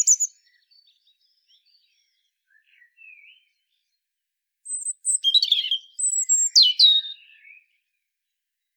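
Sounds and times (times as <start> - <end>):
European robin song: 0.0 - 3.5, 4.6 - 7.7.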